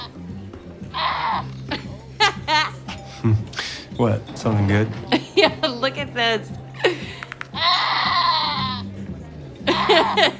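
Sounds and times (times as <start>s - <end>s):
low murmur: 0.0s - 10.3s
goat bleating like a screaming man: 0.9s - 1.5s, 7.6s - 8.9s
laughter: 1.6s - 3.5s, 9.6s - 10.3s
speech: 3.2s - 6.6s, 10.0s - 10.3s.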